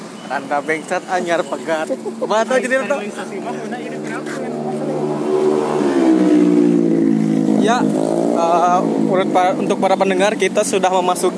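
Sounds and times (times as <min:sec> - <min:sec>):
speech: 0:00.3 - 0:04.5, 0:07.6 - 0:11.3
laughter: 0:01.4 - 0:05.1
motorcycle engine revving: 0:02.9 - 0:11.3.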